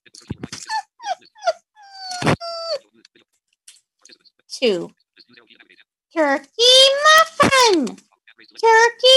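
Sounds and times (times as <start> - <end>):
dog whining: 0.6 - 2.8
speech: 4.6 - 5.0, 6.2 - 8.0, 8.6 - 9.1.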